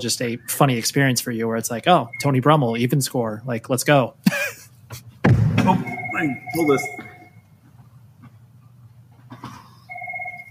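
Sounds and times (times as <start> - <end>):
speech: 0.0 - 5.0, 5.6 - 7.1
low hum: 0.0 - 10.4
phone ringing with an electronic warbling ringtone: 5.8 - 7.4, 9.9 - 10.4.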